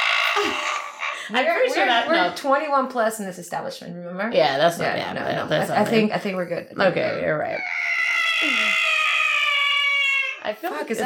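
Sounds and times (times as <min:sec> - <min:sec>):
speech: 0:01.3 - 0:07.8, 0:08.4 - 0:08.8, 0:10.4 - 0:11.0
cat in heat yowling: 0:07.6 - 0:10.5.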